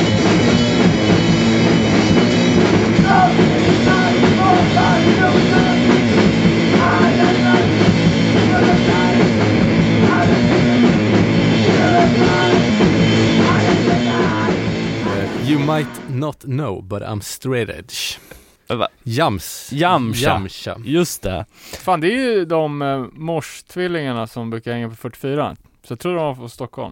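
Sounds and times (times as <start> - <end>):
pounding drums of a lo-fi hardcore band: 0.0 - 15.9
distorted guitars of a lo-fi hardcore band: 0.0 - 16.4
speech: 15.8 - 26.9.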